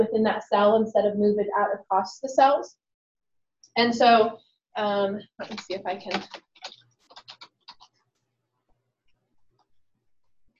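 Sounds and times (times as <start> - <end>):
speech: 0.0 - 2.8, 3.8 - 6.4
typing on a computer keyboard: 5.4 - 8.1.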